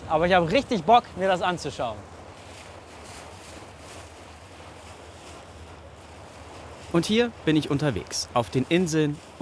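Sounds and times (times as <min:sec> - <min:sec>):
boat engine drone on the Elbe river: 0:00.0 - 0:09.4
gusty wind buffeting the microphone: 0:00.0 - 0:09.4
rushing water of the Elbe river: 0:00.0 - 0:09.4
speech: 0:00.1 - 0:02.1, 0:06.9 - 0:09.4.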